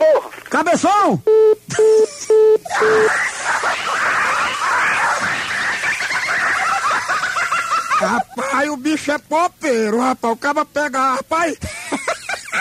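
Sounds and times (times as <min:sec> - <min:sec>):
speech: 0:00.5 - 0:02.1, 0:02.7 - 0:03.7, 0:08.0 - 0:11.8
telephone busy tone beeps after a call is hung up: 0:01.3 - 0:03.1
laughter: 0:02.2 - 0:08.8, 0:11.6 - 0:12.5.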